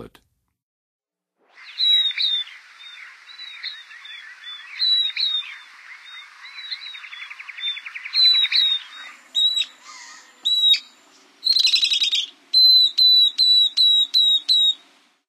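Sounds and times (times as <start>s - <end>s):
Northern Beardless-tyrannulet singing: 1.5s - 14.9s.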